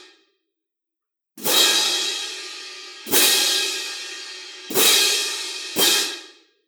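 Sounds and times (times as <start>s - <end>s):
crash cymbal: 1.4s - 6.3s.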